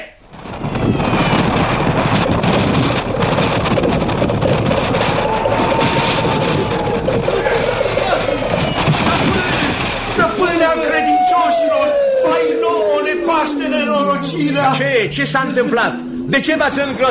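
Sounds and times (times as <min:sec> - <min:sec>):
loud wind whooshing and roaring: 0:00.2 - 0:17.0
high swooping whistle gliding downward: 0:00.3 - 0:03.3, 0:06.9 - 0:15.2
speech: 0:15.1 - 0:17.0.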